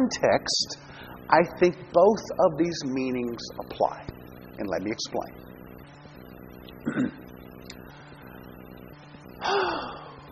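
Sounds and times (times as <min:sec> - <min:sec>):
speech: 0:00.0 - 0:05.5, 0:06.8 - 0:07.2
faint steady hum: 0:00.0 - 0:10.3
person gasping for breath: 0:09.4 - 0:10.2.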